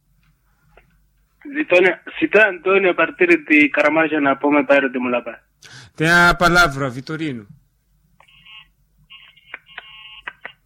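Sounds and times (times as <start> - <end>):
speech: 1.5 - 7.6
electronic telephone line beeps after a radio call-in drops: 9.8 - 10.3.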